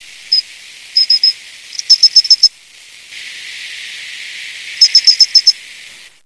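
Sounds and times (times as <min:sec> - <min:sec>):
poor pine cricket chirping: 0:00.0 - 0:06.0.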